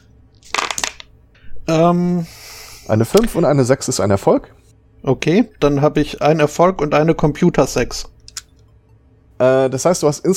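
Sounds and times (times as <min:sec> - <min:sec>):
dice rolled during a tabletop role-playing game: 0:00.4 - 0:01.1
speech: 0:01.7 - 0:08.1, 0:09.4 - 0:10.3.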